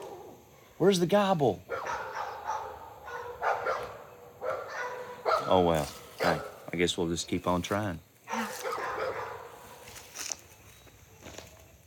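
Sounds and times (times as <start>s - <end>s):
speech: 0.8s - 1.7s, 5.5s - 8.1s
several dogs barking: 1.7s - 6.7s, 8.3s - 9.8s.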